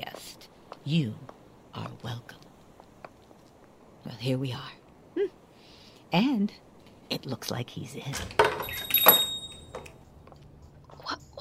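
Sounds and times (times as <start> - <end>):
speech: 0.8 - 2.4, 4.1 - 5.4, 6.1 - 8.9
door opening with rattle: 8.1 - 10.0
faint high ringing tone: 8.5 - 10.0.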